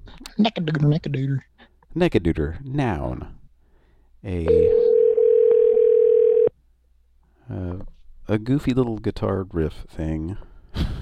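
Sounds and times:
speech: 0:00.4 - 0:03.4, 0:04.2 - 0:04.8, 0:07.5 - 0:10.9
electronic ringback tone from a phone call ringing a cell phone: 0:04.5 - 0:06.5.

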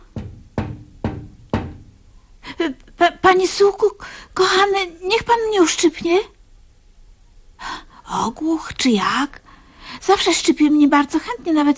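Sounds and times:
knocking on a window: 0:00.0 - 0:02.0
speech: 0:02.6 - 0:06.4, 0:08.1 - 0:11.7.

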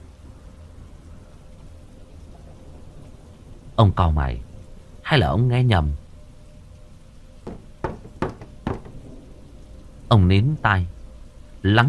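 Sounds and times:
soft hiss: 0:00.0 - 0:11.8
speech: 0:03.8 - 0:04.5, 0:05.1 - 0:06.0, 0:10.1 - 0:11.0, 0:11.6 - 0:11.8
knocking on a wooden door: 0:07.4 - 0:09.1.

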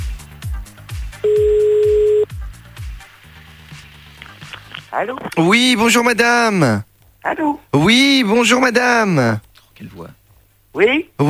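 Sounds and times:
telephone tone while a call is placed: 0:01.2 - 0:02.3
speech: 0:04.9 - 0:10.2, 0:10.8 - 0:11.2.

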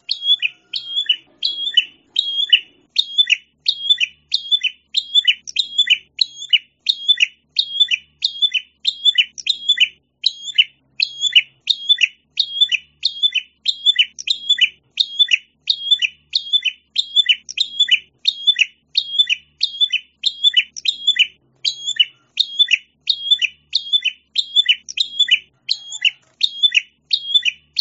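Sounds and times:
prinia chirping: 0:00.0 - 0:27.8.

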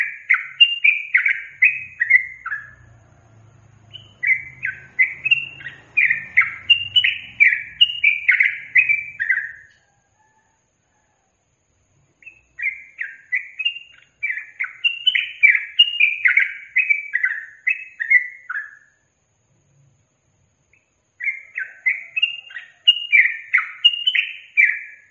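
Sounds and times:
yellow-vented bulbul singing: 0:00.0 - 0:09.8, 0:12.1 - 0:19.0, 0:20.6 - 0:25.0
faint low rumbling: 0:01.5 - 0:09.6.

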